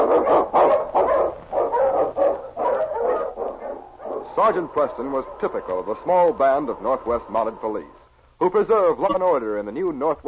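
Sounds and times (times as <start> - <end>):
husky sled dog barking: 0.0 - 7.7
speech: 4.4 - 10.2.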